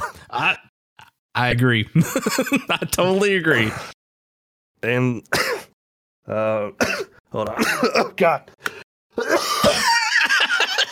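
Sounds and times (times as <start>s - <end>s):
speech: 0.3s - 0.7s, 1.4s - 4.0s, 4.8s - 5.5s, 6.3s - 8.6s
laughter: 2.0s - 3.2s, 9.2s - 10.9s
person coughing: 5.3s - 5.8s, 6.8s - 8.2s.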